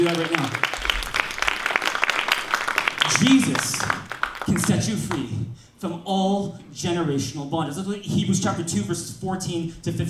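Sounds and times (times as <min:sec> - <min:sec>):
audience applauding: 0:00.0 - 0:05.3
speech: 0:04.7 - 0:10.0.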